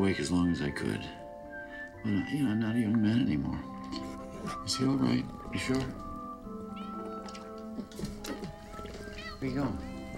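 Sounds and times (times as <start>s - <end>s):
speech: 0.0s - 1.2s, 2.0s - 6.1s, 9.4s - 9.9s
cats meowing: 6.6s - 10.1s.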